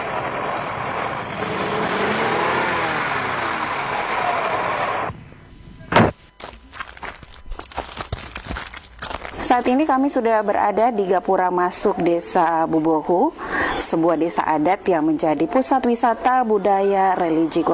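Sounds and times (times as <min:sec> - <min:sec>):
another vehicle passing: 0:00.0 - 0:05.2
car engine rumble while driving on road: 0:00.0 - 0:06.2
road noise while driving: 0:00.0 - 0:07.2, 0:13.5 - 0:17.7
speech: 0:09.6 - 0:17.7.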